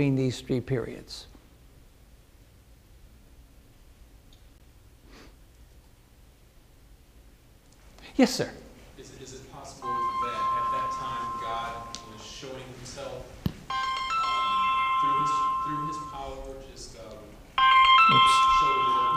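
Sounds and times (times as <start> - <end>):
speech: 0.0 - 1.3, 8.2 - 9.4
cell phone ringtone playing a bright electronic melody: 9.8 - 12.5, 13.7 - 16.5, 17.6 - 19.1.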